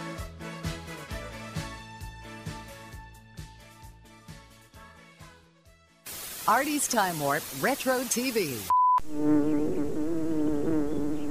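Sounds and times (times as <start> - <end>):
speech: 6.5 - 9.8
bee buzzing: 9.0 - 11.2.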